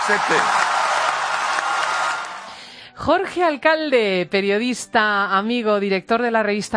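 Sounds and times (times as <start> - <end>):
large crowd applauding after climate agreement announcement: 0.0 - 2.6
speech: 0.1 - 0.6, 3.0 - 6.7.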